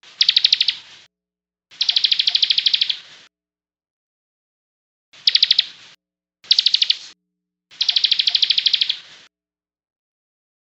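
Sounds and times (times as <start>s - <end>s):
songbird trilling: 0.1s - 0.9s, 1.8s - 3.1s, 5.2s - 5.8s, 6.5s - 9.1s.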